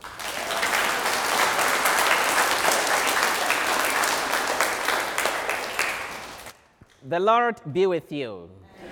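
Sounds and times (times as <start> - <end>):
crowd applauding: 0.0 - 6.6
speech: 7.1 - 8.6.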